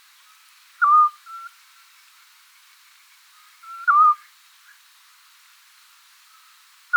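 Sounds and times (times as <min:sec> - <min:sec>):
Eurasian scops owl calling, Otus scops: 0:00.8 - 0:01.5, 0:03.6 - 0:04.3.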